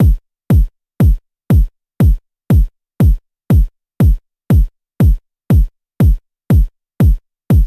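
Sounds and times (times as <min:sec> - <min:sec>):
dancefloor pop kick drum: 0:00.0 - 0:07.6.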